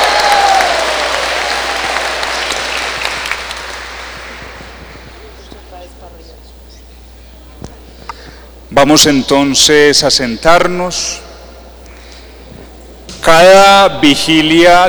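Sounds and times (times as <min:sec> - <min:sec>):
crowd applauding for altar servers: 0:00.0 - 0:06.1
faint murmurs: 0:01.5 - 0:09.0, 0:11.1 - 0:13.3
speech: 0:08.8 - 0:11.2, 0:13.2 - 0:14.8.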